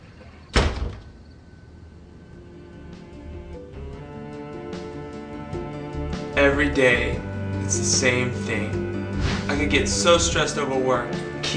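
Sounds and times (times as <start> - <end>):
door shut with a solid thud: 0.2 - 1.2
soft steady tonal hum: 1.1 - 11.5
speech: 6.4 - 8.8, 9.5 - 11.5.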